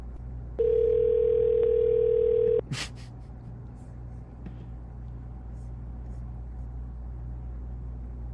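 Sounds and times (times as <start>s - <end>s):
low hum: 0.0s - 8.3s
telephone ringback tone on an outgoing call: 0.6s - 2.6s.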